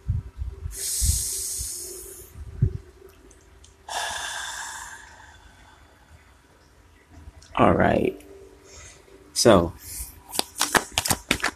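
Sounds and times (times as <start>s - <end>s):
speech: 7.6s - 8.2s, 9.4s - 9.8s
deck of cards being riffle shuffled before a card reading: 10.3s - 11.5s.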